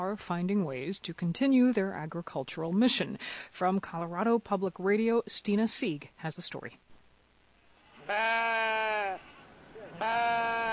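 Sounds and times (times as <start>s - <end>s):
speech: 0.0s - 6.9s, 8.1s - 8.8s, 10.0s - 10.4s
faint noise: 0.0s - 10.7s
sheep bleating in a covered outdoor livestock arena in Colorado: 8.0s - 10.7s.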